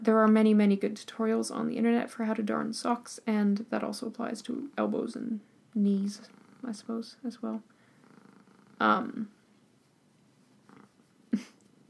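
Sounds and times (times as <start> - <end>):
speech: 0.0 - 7.7, 8.8 - 9.4
female cat purring: 2.5 - 9.6, 10.2 - 11.8.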